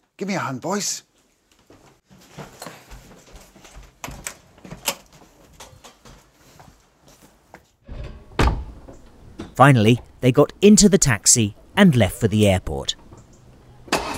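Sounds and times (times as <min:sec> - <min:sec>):
speech: 0:00.2 - 0:01.1, 0:09.6 - 0:13.0
back door shut firmly with heavy thud: 0:07.9 - 0:09.5.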